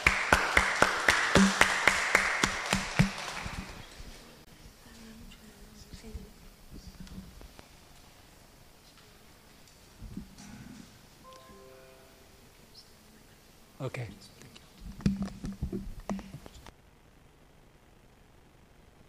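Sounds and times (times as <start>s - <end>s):
audience applause for a speaker: 0.0s - 4.1s.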